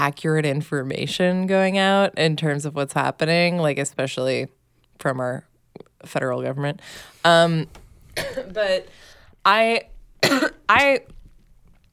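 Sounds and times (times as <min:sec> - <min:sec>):
speech: 0:00.0 - 0:11.2
dry throaty coughs: 0:08.2 - 0:08.6, 0:10.2 - 0:10.7.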